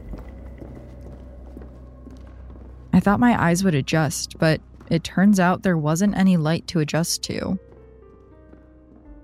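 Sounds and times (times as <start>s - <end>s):
slow footsteps of one person: 0.0s - 5.5s, 7.4s - 9.2s
low hum: 0.0s - 8.2s
speech: 3.0s - 7.7s.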